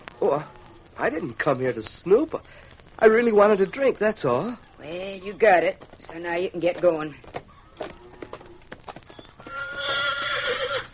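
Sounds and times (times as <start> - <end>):
speech: 0.2 - 7.4
hooves clip-clopping: 2.8 - 10.9
horse whinnying: 9.4 - 10.9.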